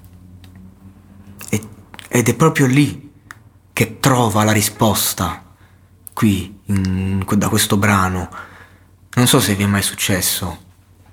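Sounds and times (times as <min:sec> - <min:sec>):
crisp chewing of apple seeds: 0:01.4 - 0:02.2
speech: 0:01.5 - 0:03.0, 0:03.8 - 0:05.4, 0:06.2 - 0:08.5, 0:09.2 - 0:10.7.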